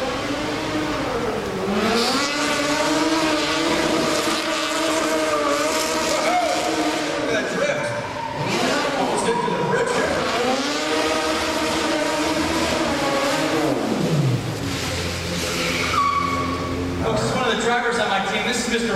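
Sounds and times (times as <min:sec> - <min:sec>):
modified pursuit car engine revving: 0:00.0 - 0:18.8.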